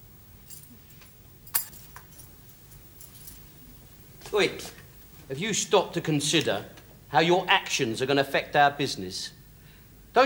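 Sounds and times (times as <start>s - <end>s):
low hum: 0.0s - 10.2s
van keys jangling: 0.5s - 4.0s
speech: 4.3s - 9.4s.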